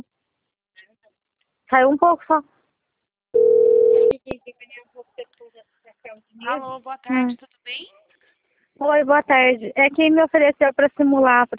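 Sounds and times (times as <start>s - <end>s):
speech: 1.7s - 2.5s, 4.6s - 8.0s, 8.8s - 11.5s
telephone dial tone while placing a call: 3.4s - 4.2s.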